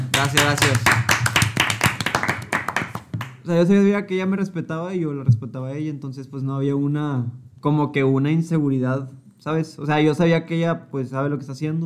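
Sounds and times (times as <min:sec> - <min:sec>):
hands clapping: 0:00.0 - 0:03.4
speech: 0:00.2 - 0:01.1, 0:03.5 - 0:11.8.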